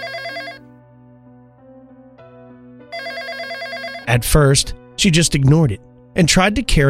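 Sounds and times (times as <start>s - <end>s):
telephone ringing with a bright electronic tone: 0.0s - 0.7s, 2.9s - 4.3s
speech: 4.1s - 6.8s.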